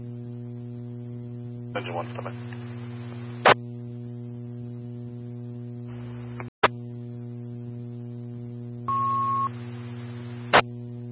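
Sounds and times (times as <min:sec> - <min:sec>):
constant low radio hum: 0:00.0 - 0:11.0
speech: 0:01.8 - 0:02.7
sharp static clicks: 0:01.8 - 0:03.6, 0:05.9 - 0:06.8
fire dispatch paging electronic alert tone: 0:08.9 - 0:09.5.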